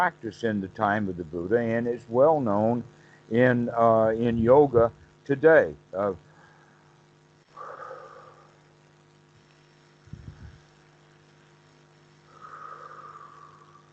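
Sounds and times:
speech: 0:00.0 - 0:06.3
long slow deep breaths: 0:02.9 - 0:03.3, 0:06.2 - 0:08.8, 0:12.2 - 0:13.9.

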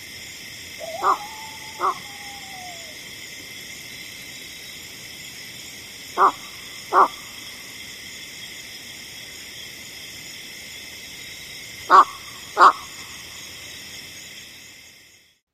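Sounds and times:
droning chorus of insects or frogs: 0:00.0 - 0:15.4
flushed American bittern cock-cock calls: 0:00.8 - 0:03.1.

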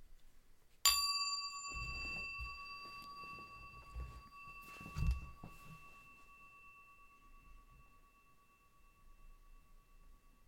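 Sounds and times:
meditation bell struck and ringing: 0:00.9 - 0:10.4
faint low rustling: 0:01.7 - 0:06.4.

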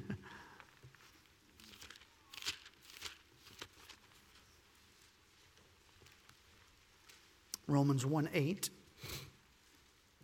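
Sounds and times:
Bible paper pages turning: 0:01.6 - 0:04.5
speech: 0:07.7 - 0:08.8.

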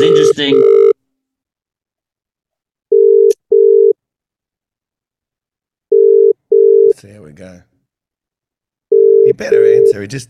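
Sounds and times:
speech: 0:00.4 - 0:00.8, 0:07.0 - 0:07.7, 0:09.4 - 0:10.2
steady low electronic telephone beeps while placing a call: 0:02.9 - 0:04.0, 0:05.9 - 0:06.9, 0:08.9 - 0:09.9.

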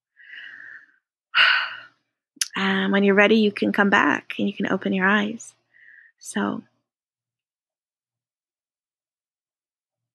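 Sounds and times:
deep breath released out through the mouth: 0:00.1 - 0:02.0, 0:05.7 - 0:06.2
speech: 0:02.6 - 0:05.6, 0:06.2 - 0:06.7.

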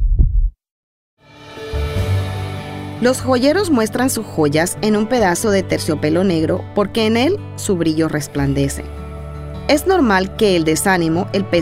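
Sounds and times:
deep heartbeat thump: 0:00.0 - 0:00.6
speech: 0:03.0 - 0:09.0, 0:09.7 - 0:11.5.

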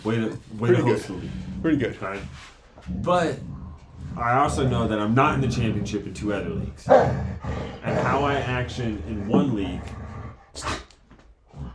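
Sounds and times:
speech: 0:00.0 - 0:10.0, 0:10.6 - 0:10.8
dogs barking: 0:06.8 - 0:08.4.

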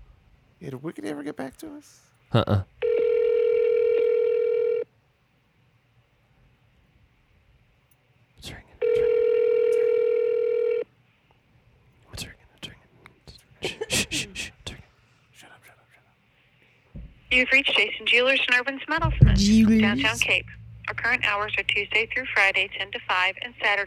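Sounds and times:
speech: 0:00.6 - 0:02.7, 0:17.4 - 0:23.8
ringback tones on a phone line: 0:02.8 - 0:04.8, 0:08.8 - 0:10.8.

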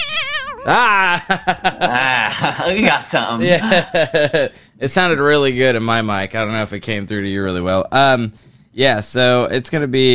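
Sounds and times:
cat meowing loudly: 0:00.0 - 0:00.9
speech: 0:00.6 - 0:10.1
laughter: 0:00.7 - 0:04.6.

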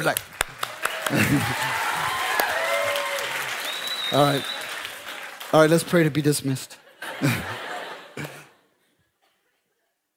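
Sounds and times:
speech: 0:00.0 - 0:00.3, 0:01.1 - 0:01.8, 0:04.1 - 0:04.6, 0:05.5 - 0:07.6
audience clapping: 0:00.0 - 0:06.6
laughter: 0:01.0 - 0:02.2, 0:06.8 - 0:08.7.

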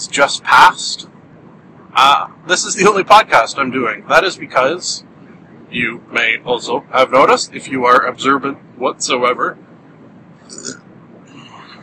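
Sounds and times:
speech: 0:00.0 - 0:01.2, 0:02.0 - 0:05.1, 0:05.7 - 0:09.7
short low burp: 0:10.5 - 0:10.8.

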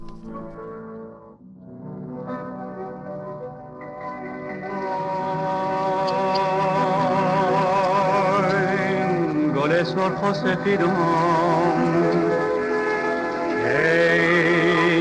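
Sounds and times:
recorded Persian song with wavering vibrato melody over instruments: 0:04.2 - 0:14.9
speech: 0:09.9 - 0:12.3.

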